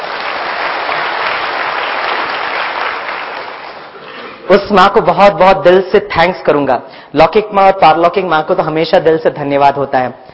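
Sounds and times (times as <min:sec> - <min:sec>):
audience applause: 0:00.0 - 0:04.0
speech: 0:04.5 - 0:10.2.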